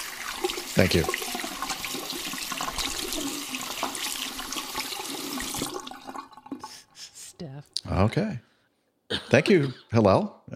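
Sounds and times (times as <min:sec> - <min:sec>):
running water while someone washes their hands: 0:00.0 - 0:07.0
speech: 0:00.8 - 0:01.2, 0:08.0 - 0:08.5, 0:09.3 - 0:10.4.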